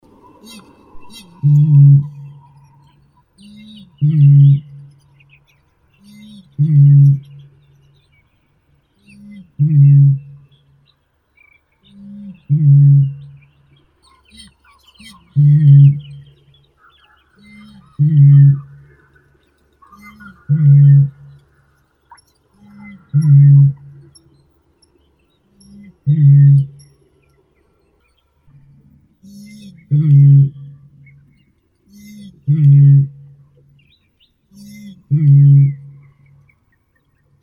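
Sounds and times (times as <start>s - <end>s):
great bittern Botaurus stellaris calling: 0.4s - 5.3s, 6.0s - 8.0s, 9.0s - 10.6s, 11.8s - 24.4s, 25.5s - 27.0s, 28.5s - 37.2s.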